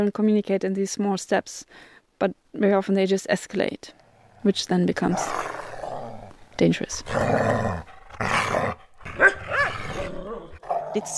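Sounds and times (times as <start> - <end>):
speech: 0.0 - 5.5, 6.6 - 9.4, 10.9 - 11.1
dog growling and barking: 5.0 - 6.4, 7.0 - 11.1.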